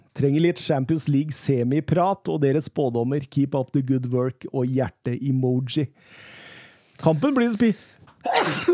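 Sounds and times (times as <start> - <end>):
speech: 0.2 - 6.4, 7.0 - 8.7
quiet inhale: 6.0 - 7.0
person sneezing: 8.2 - 8.7.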